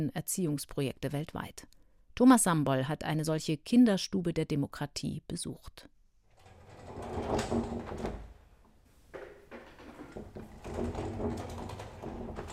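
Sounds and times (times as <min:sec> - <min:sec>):
speech: 0:00.0 - 0:05.9, 0:07.0 - 0:08.3
sliding door rumbling open and shut along its track: 0:06.3 - 0:08.5, 0:09.1 - 0:12.5.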